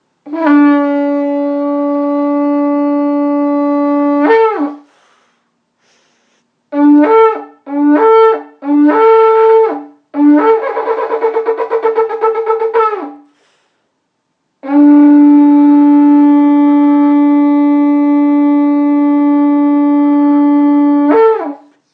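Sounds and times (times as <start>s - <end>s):
shofar blowing: 0.2s - 5.1s, 6.7s - 13.3s, 14.6s - 21.8s.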